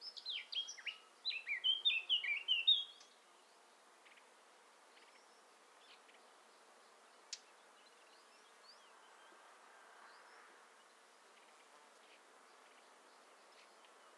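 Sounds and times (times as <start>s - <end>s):
Eurasian blackcap Sylvia atricapilla warbling song: 0.0s - 3.2s.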